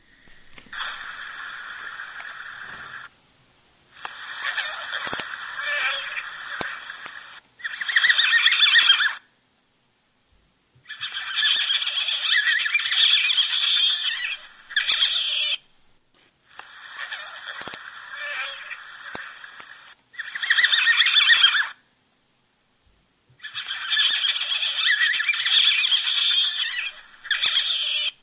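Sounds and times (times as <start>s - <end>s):
North American river otter calls: 0.7s - 3.1s, 4.0s - 9.2s, 10.8s - 15.6s, 16.6s - 21.8s, 23.4s - 28.2s.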